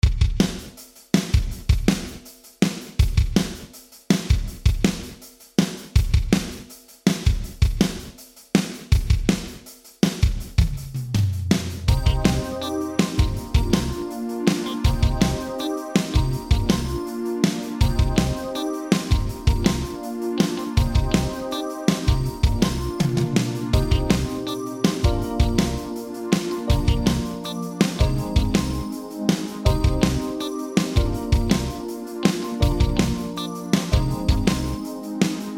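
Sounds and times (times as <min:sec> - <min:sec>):
drums with gated plate reverb from a vintage digital effects unit: 0:00.0 - 0:35.5.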